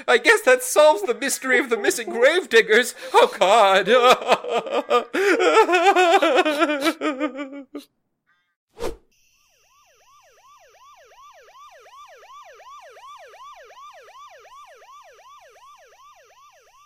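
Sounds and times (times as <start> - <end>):
laughter: 0.0 - 7.9
speech: 0.0 - 8.0
emergency vehicle siren yelping: 9.4 - 16.8.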